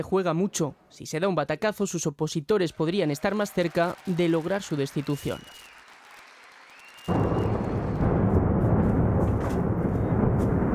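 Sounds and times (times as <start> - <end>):
speech: 0.0 - 5.7
explosion from missile attack on city: 7.1 - 10.7.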